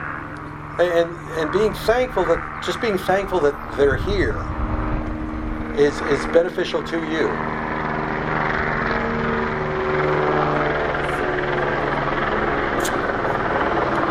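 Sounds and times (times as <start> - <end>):
helicopter flying overhead: 0.0 - 14.1
speech: 0.8 - 4.6, 5.8 - 7.5.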